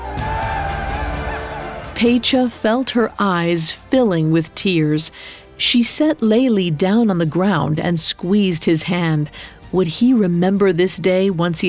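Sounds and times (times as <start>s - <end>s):
crowd of villagers cheering and whooping around a whale: 0.0s - 3.9s
speech: 2.0s - 11.6s.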